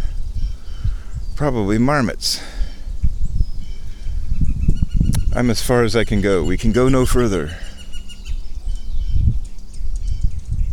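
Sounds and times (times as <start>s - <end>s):
bird chirping outdoors: 0.0s - 10.7s
steady low rumble of wind or handling noise: 0.0s - 10.7s
speech: 1.4s - 2.5s, 5.4s - 7.6s.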